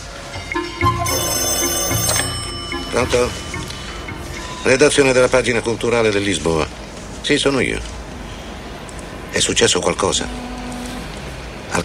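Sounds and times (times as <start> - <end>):
telephone bell ringing: 0.4 - 5.4
speech: 3.0 - 3.5, 4.6 - 8.0, 9.4 - 10.6.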